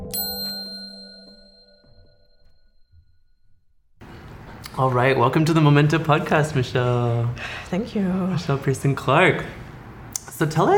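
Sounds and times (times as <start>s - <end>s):
bright metallic bell ding: 0.0s - 3.6s
speech: 4.8s - 9.6s, 10.4s - 10.7s.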